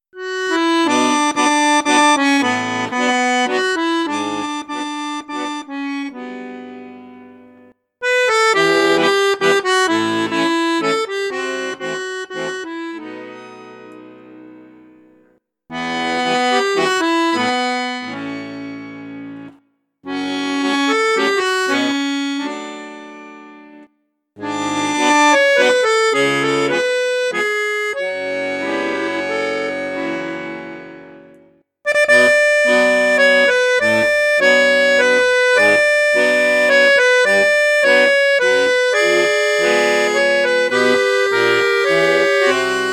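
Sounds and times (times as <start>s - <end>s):
Cavagnolo Professionnel 12 accordion in bassoon piccolo register: 0.0s - 42.9s.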